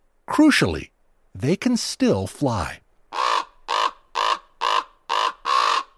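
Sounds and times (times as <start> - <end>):
speech: 0.3 - 2.8
raven harsh raspy croaking: 3.1 - 5.9.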